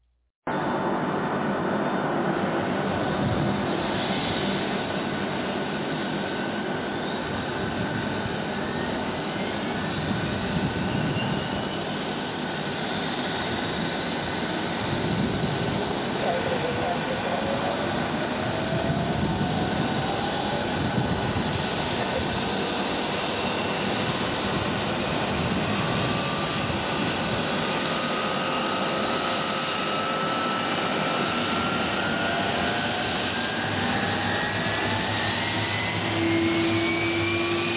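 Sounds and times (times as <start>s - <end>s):
airliner engines spooling up: 0.5s - 37.7s.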